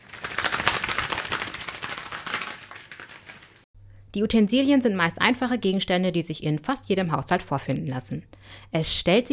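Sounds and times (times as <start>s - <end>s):
papery fluttering flaps made by rubbing empty balloons: 0.0s - 3.7s
speech: 4.1s - 9.3s.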